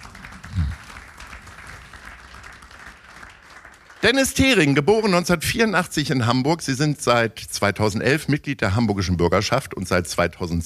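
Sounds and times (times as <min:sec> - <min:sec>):
audience applause in Hamburg: 0:00.0 - 0:04.8
speech: 0:04.0 - 0:10.6.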